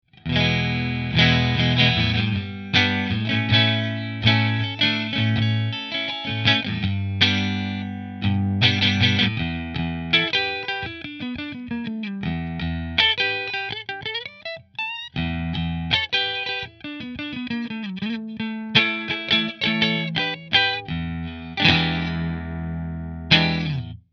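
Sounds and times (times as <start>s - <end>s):
Fender electric guitar on pickup position 3: 0.1s - 24.0s.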